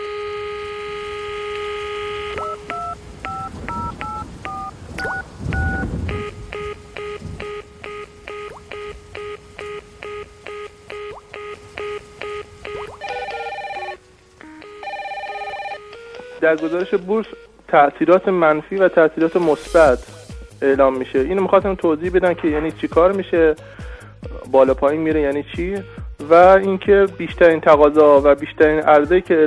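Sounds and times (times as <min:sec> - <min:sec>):
steady telephone dial tone: 0:00.0 - 0:17.5
telephone ringing with rapid repeated pulsing tones: 0:00.0 - 0:19.9
speech: 0:16.5 - 0:23.9, 0:24.5 - 0:29.4.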